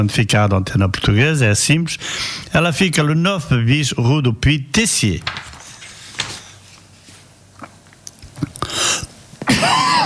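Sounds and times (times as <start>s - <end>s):
speech: 0.0s - 5.5s
radio host clearing throat on a Portuguese radio broadcast: 8.4s - 10.0s
radio host coughing on a Portuguese radio broadcast: 8.7s - 10.0s.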